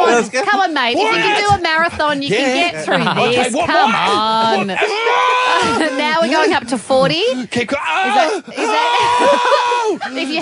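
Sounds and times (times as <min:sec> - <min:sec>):
laughter: 0:00.0 - 0:10.4
speech: 0:00.1 - 0:10.4
man screaming in pain from labor pain simulator: 0:03.6 - 0:06.3, 0:07.6 - 0:10.1.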